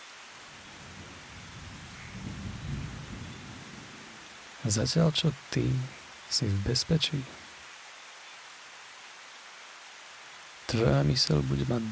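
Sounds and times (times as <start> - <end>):
steady rain hissing: 0.0 - 11.9
low rumble of thunder: 0.7 - 4.2
speech: 4.6 - 7.4, 10.7 - 11.9.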